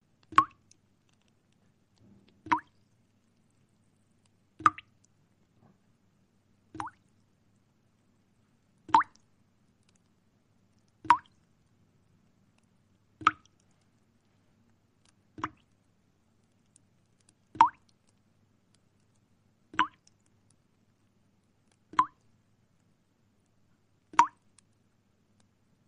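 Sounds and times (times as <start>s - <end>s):
water dripping: 0.2s - 1.2s, 2.3s - 2.9s, 4.6s - 5.2s, 6.7s - 7.2s, 8.8s - 9.3s, 10.8s - 11.5s, 13.2s - 13.8s, 15.3s - 15.8s, 17.4s - 18.2s, 19.7s - 20.3s, 21.9s - 22.3s, 24.1s - 24.6s.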